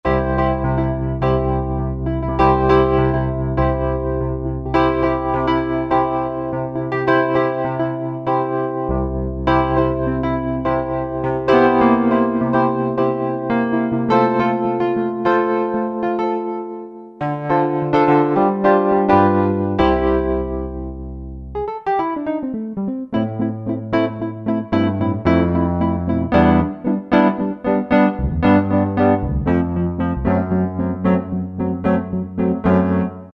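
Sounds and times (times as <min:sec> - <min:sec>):
Wurlitzer electric piano on Alesis QS8: 0:00.0 - 0:33.3.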